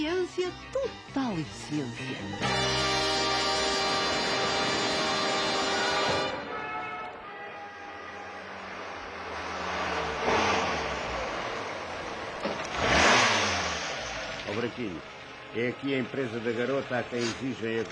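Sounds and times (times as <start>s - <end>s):
speech: 0.3s - 2.8s, 14.7s - 17.9s
car engine revving as it pulls up: 2.4s - 6.4s, 8.9s - 17.9s.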